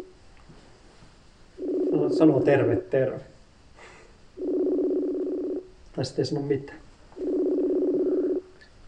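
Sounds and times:
phone ringback tones on speaker: 1.6 - 2.6, 4.4 - 5.6, 7.2 - 8.5
speech: 2.0 - 3.3, 6.0 - 6.8.

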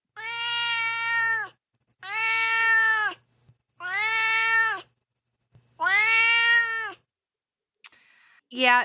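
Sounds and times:
cat meowing: 0.1 - 3.2, 3.8 - 4.9, 5.8 - 7.1
speech: 8.5 - 8.8.

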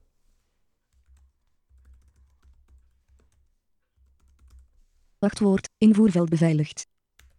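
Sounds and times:
rapid typing on a computer keyboard: 0.9 - 4.8, 7.0 - 7.3
speech: 5.2 - 6.9.

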